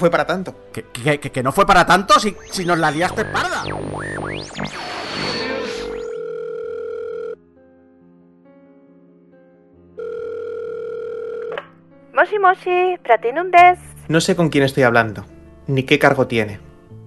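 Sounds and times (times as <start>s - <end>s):
speech: 0.0s - 5.4s, 12.2s - 16.7s
noisy sweeping telephone line tone: 2.2s - 6.2s
long steady electronic telephone line tones: 2.3s - 7.3s.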